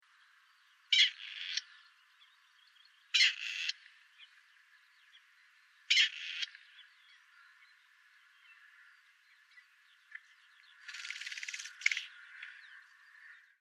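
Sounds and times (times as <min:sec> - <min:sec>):
grey partridge: 0:00.9 - 0:01.8, 0:03.1 - 0:04.3, 0:05.9 - 0:07.7, 0:09.5 - 0:13.6.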